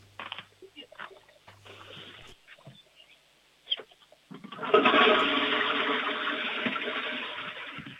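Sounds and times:
toilet flushing: 4.4s - 7.9s.

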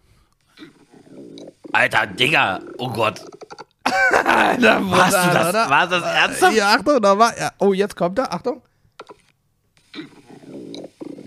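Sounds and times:
stomach growling: 0.5s - 3.6s, 9.9s - 11.2s
speech: 1.8s - 3.3s, 4.2s - 8.7s
laughter: 3.9s - 6.6s.

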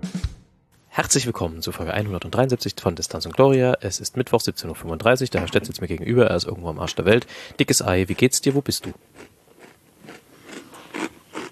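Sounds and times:
speech: 1.0s - 9.3s
chewing food with crunchy wet bites: 6.9s - 11.5s.

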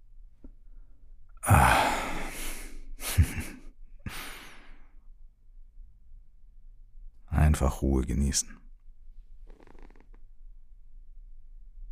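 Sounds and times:
deep breaths during a calm relaxation exercise: 1.4s - 5.0s
speech: 7.6s - 8.6s.

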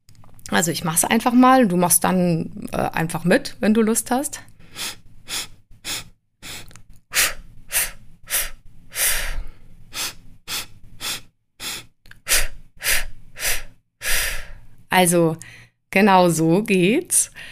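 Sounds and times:
speech: 0.5s - 5.5s, 15.0s - 17.5s
sharp sniffs in through the nose in a rhythmic breathing exercise: 4.7s - 14.3s.

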